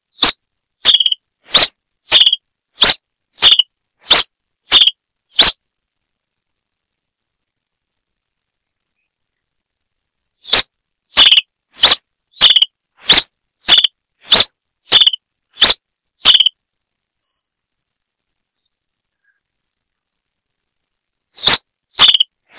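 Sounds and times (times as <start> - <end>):
Coryphospingus cucullatus calling: 0.2 - 5.6, 10.4 - 16.5, 21.4 - 22.5.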